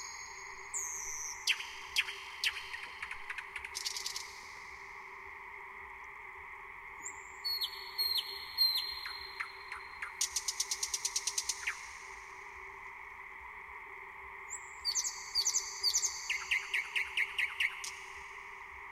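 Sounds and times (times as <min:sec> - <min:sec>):
thrush nightingale song: 0:00.0 - 0:04.9, 0:07.0 - 0:12.4, 0:14.4 - 0:18.8.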